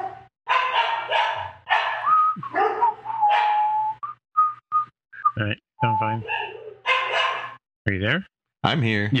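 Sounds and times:
dog barking: 0.0s - 3.6s, 6.2s - 7.6s
speech: 5.4s - 6.4s, 7.9s - 9.1s.

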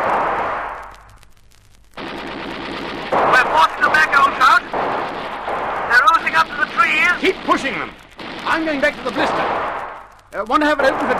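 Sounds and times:
rapid gunfire from enemy soldiers: 0.0s - 1.0s, 2.0s - 11.1s
speech: 8.6s - 9.4s, 10.4s - 11.1s.

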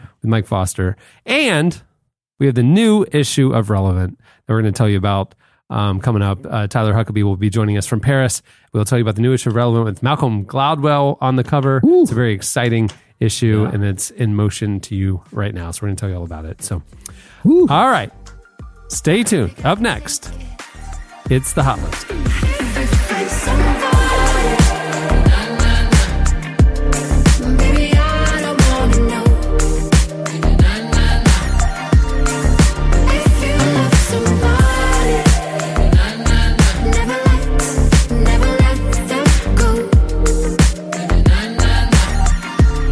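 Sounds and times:
speech: 0.2s - 18.2s, 18.9s - 20.7s, 21.3s - 23.0s
polished electronic pop track with punchy beat, deep bass and layered synths: 17.0s - 42.9s.

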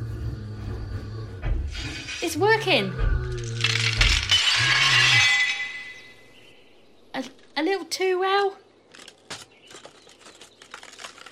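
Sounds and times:
low hum: 0.0s - 7.6s
speech: 2.2s - 3.1s, 7.9s - 8.6s
bright tinkling glass shards: 3.4s - 6.3s
pane of glass shattering in a sharp crash: 3.4s - 6.3s.

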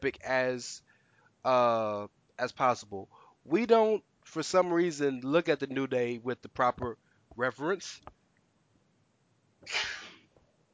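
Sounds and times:
speech: 0.0s - 8.2s, 9.6s - 10.0s
faint breath: 0.8s - 1.4s, 3.1s - 3.5s
person sneezing: 9.6s - 10.3s.

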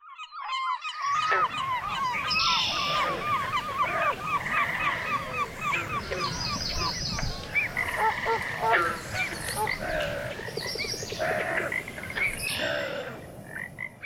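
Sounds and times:
chorus of croaking frogs in a wetland: 0.8s - 14.0s
geese honking over a wetland: 1.1s - 10.6s.

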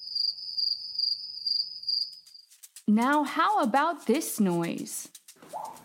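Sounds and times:
cricket chirping: 0.0s - 2.7s
speech: 2.9s - 5.2s.

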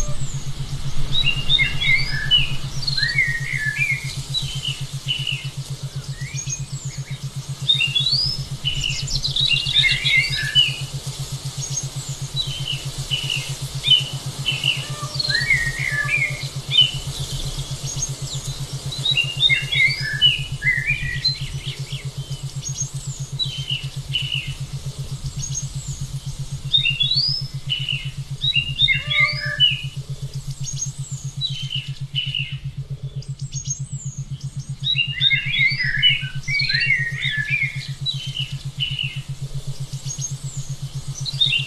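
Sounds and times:
forest birds chirping and trilling: 0.0s - 41.6s
steady low hum of a 7.83 Hz Schumann resonance wave: 0.0s - 41.6s.

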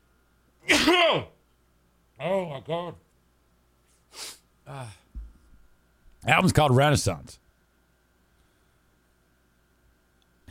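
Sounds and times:
loud sneeze: 0.6s - 1.3s
speech: 0.8s - 1.3s, 2.2s - 3.0s, 4.1s - 5.0s, 6.2s - 7.4s.

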